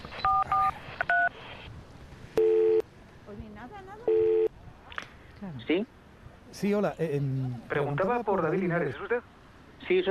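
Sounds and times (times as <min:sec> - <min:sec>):
light noise: 0:00.0 - 0:10.0
touch-tone dialing on a payphone in a street booth: 0:00.2 - 0:01.3
longer steady lower payphone tone: 0:02.4 - 0:02.8, 0:04.1 - 0:04.5
speech: 0:05.7 - 0:06.0, 0:06.6 - 0:10.0.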